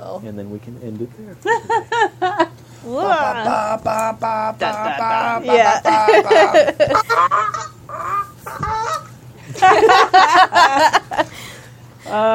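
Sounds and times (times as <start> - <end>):
speech: 0.2 - 7.6, 9.8 - 11.3, 12.1 - 12.3
laughter: 1.5 - 11.4
person imitating a goose honking: 3.0 - 9.1.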